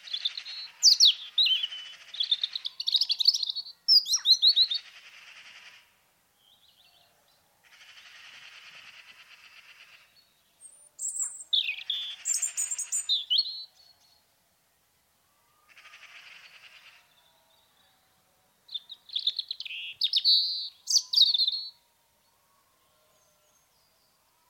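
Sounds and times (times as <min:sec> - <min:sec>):
robin singing: 0:00.0 - 0:05.0, 0:06.4 - 0:07.4, 0:09.9 - 0:14.3, 0:18.6 - 0:24.4.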